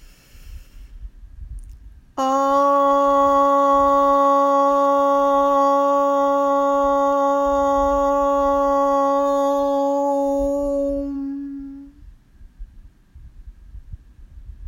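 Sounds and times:
soft breath in: 0.0s - 1.1s
long steady chanted om: 2.2s - 12.0s.

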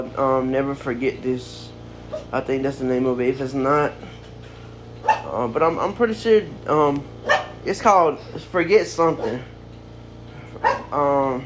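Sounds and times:
speech: 0.0s - 4.2s, 5.3s - 9.5s, 10.9s - 11.4s
low steady hum: 0.0s - 11.4s
dog barking: 5.0s - 5.3s, 7.2s - 7.6s, 9.2s - 9.4s, 10.6s - 11.0s.

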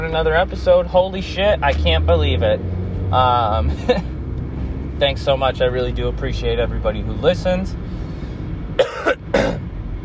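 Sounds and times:
speech: 0.1s - 4.1s, 5.0s - 8.0s
harsh chesty coughs: 8.8s - 9.7s.

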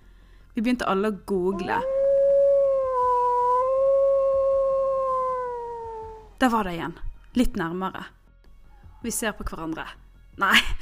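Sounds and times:
speech: 0.6s - 2.0s, 6.4s - 8.2s, 9.0s - 10.8s
wolf-like howl heard by a campfire: 1.5s - 6.4s.

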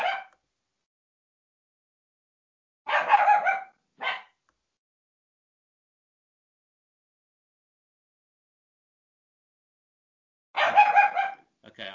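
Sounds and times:
dog barking: 0.0s - 0.4s, 2.9s - 4.4s, 10.6s - 11.5s.

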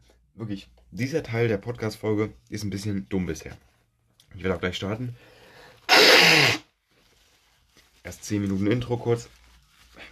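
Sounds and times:
speech: 0.4s - 3.7s, 4.3s - 5.4s, 6.0s - 6.6s, 8.1s - 9.4s
person sneezing loudly: 5.9s - 6.7s.

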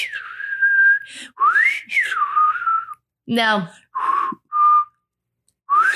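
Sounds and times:
person whistling a bouncy disco melody: 0.0s - 3.0s, 4.0s - 5.1s, 5.7s - 5.9s
speech: 3.3s - 3.8s.

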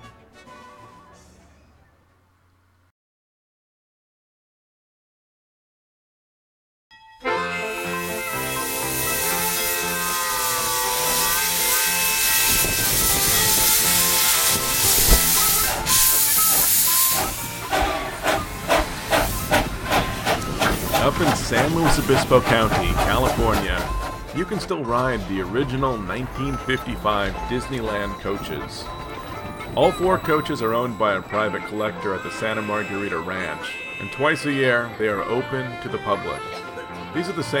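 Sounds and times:
music: 0.0s - 2.9s, 6.9s - 37.5s
steam train locomotive venting a loud sustained hiss of steam: 7.4s - 34.6s
speech: 21.5s - 29.0s, 29.8s - 36.6s, 37.2s - 37.5s.

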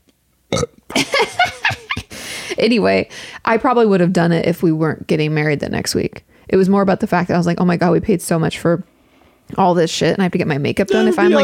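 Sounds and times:
person burping after drinking sparkling water: 0.5s - 0.8s, 10.9s - 11.4s
laughter: 1.0s - 2.1s, 10.9s - 11.4s
speech: 2.6s - 8.9s, 9.5s - 11.4s.

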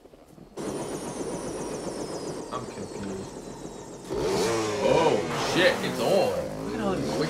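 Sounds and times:
dirt bike engine revving in the woods during a wheelie: 0.6s - 7.2s.

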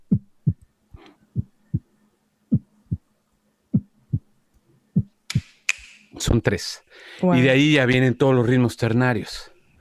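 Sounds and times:
low heartbeat thumps in paired beats: 0.0s - 0.6s, 1.4s - 1.9s, 2.5s - 3.1s, 3.7s - 4.3s, 5.0s - 5.2s
speech: 6.3s - 9.5s.

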